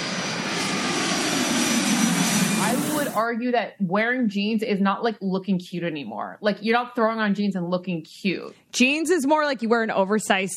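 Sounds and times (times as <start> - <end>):
jet airplane engine roar with high whine: 0.0 - 3.2
speech: 3.2 - 10.5.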